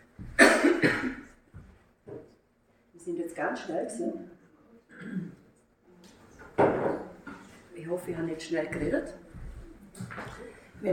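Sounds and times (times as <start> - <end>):
person coughing: 0.4 - 1.3, 4.9 - 5.5
speech: 3.4 - 4.4, 7.8 - 9.2.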